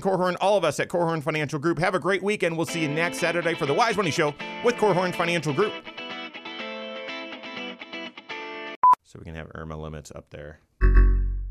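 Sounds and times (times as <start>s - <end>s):
speech: 0.0s - 5.9s, 9.2s - 11.1s
electronic recording-start alert chime: 10.8s - 11.5s.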